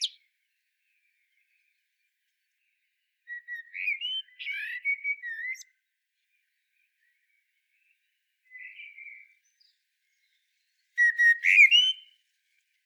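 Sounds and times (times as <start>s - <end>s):
common blackbird Turdus merula singing: 0.0s - 0.2s, 3.3s - 5.7s, 8.5s - 10.4s, 11.0s - 12.2s.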